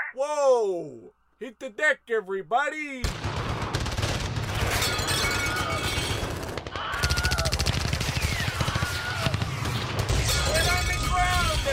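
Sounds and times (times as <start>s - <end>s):
speech: 0.2s - 3.4s
heavy automatic gunfire with bullets flying: 3.0s - 11.7s.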